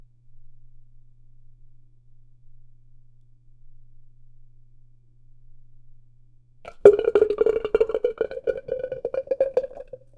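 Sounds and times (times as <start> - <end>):
boba pearls falling into milk tea: 6.7 - 10.0.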